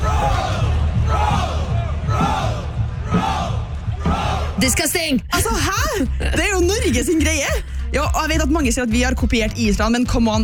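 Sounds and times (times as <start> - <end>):
crowd of fans chanting at a World Cup: 0.0 - 4.9
speech: 4.6 - 10.4.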